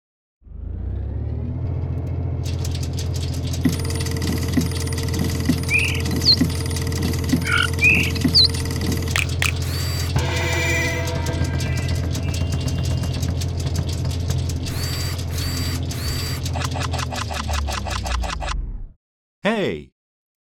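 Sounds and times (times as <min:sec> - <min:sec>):
whirring mechanical sound effect of a random number generator running: 0:00.6 - 0:18.4
rapid ticking: 0:02.5 - 0:18.3
chirps and buzzing bursts: 0:03.6 - 0:17.9.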